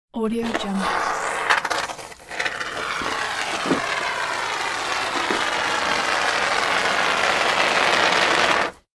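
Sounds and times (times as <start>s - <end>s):
foam glue being applied: 0.5s - 8.9s.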